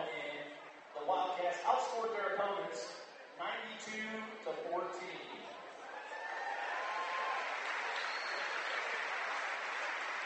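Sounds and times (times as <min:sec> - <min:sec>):
speech: 0:01.5 - 0:05.6
crowd whistles and cheers: 0:05.8 - 0:10.2
audience applause for champion football team: 0:05.9 - 0:10.2.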